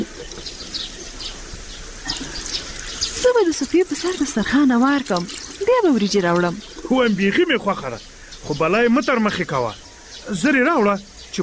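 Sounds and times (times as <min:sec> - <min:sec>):
warm water poured over hands for washing with soap: 0:02.0 - 0:06.9
speech: 0:03.4 - 0:11.4.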